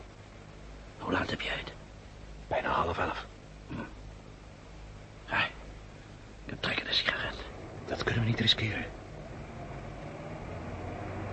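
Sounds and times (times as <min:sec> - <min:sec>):
steady noise: 0:00.0 - 0:11.3
speech: 0:01.1 - 0:01.8, 0:02.5 - 0:03.9, 0:08.0 - 0:09.0
faint car engine humming: 0:05.6 - 0:11.3.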